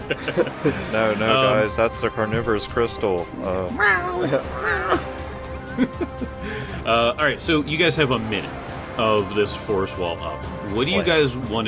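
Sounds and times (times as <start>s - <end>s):
laughter: 0.0s - 1.8s, 3.9s - 6.9s
speech: 0.1s - 5.1s, 5.8s - 11.6s
cat howling: 3.8s - 5.3s.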